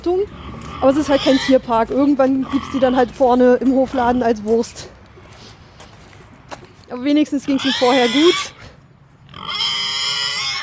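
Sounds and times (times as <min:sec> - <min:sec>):
young boar on an organic farm grunting: 0:00.0 - 0:04.4, 0:07.4 - 0:08.7, 0:09.3 - 0:10.6
speech: 0:00.0 - 0:05.0, 0:06.9 - 0:08.6
young boar high-pitched squealing call: 0:00.3 - 0:01.7, 0:07.4 - 0:08.6, 0:09.3 - 0:10.6.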